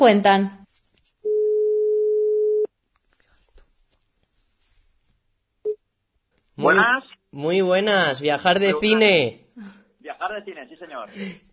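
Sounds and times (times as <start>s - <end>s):
speech: 0.0s - 0.6s, 6.6s - 11.5s
faint rustling: 0.6s - 1.3s, 2.9s - 5.4s
telephone dial tone while placing a call: 1.3s - 2.7s.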